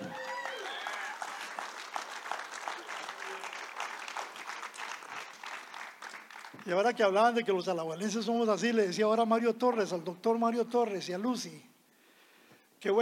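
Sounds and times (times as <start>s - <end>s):
crowd applauding a storyteller: 0.0s - 6.8s
speech: 6.6s - 11.7s, 12.8s - 13.0s.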